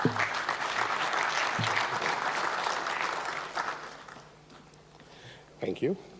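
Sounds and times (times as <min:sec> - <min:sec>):
audience applause welcoming a speaker to a talk: 0:00.0 - 0:04.3
speech: 0:05.8 - 0:06.1.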